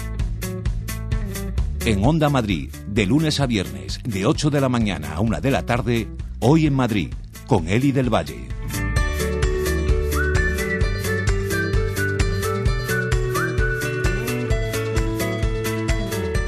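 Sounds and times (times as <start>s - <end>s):
upbeat steadily pulsing music track: 0.0s - 16.4s
speech: 1.8s - 8.6s
person whistling a short tune: 9.5s - 16.3s.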